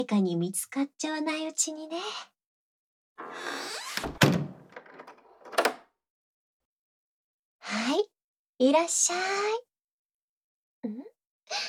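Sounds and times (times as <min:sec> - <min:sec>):
speech: 0:00.0 - 0:02.3, 0:03.2 - 0:04.4, 0:07.7 - 0:09.7, 0:10.8 - 0:11.6
door swinging shut with a solid thunk: 0:03.2 - 0:05.8
rattling clicks: 0:04.0 - 0:05.8.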